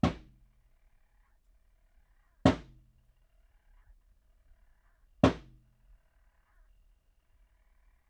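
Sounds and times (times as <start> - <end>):
drum hits in a courtyard recorded on a cell phone: 0.0 - 0.4, 2.5 - 2.8, 5.2 - 5.6.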